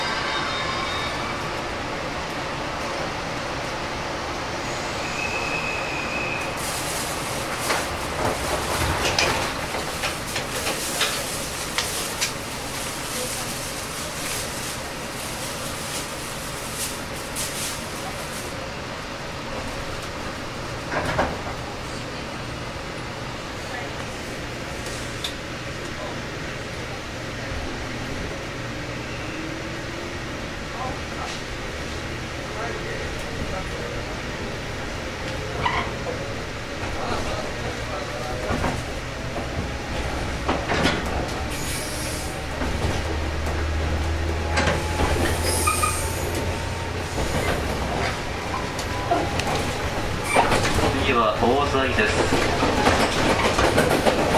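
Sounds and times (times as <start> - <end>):
JR Kyushu 415 series electric train running on the Nippō Line: 0.0 - 54.3
JR Kyushu 415 series electric train clatter: 6.5 - 18.6, 19.5 - 22.0, 35.2 - 54.3.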